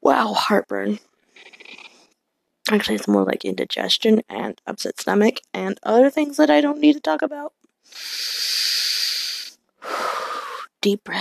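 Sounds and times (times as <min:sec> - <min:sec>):
speech: 0:00.2 - 0:01.5, 0:02.7 - 0:08.9, 0:10.8 - 0:11.1
person breathing deeply with heartburn and an upset stomach: 0:07.9 - 0:10.7.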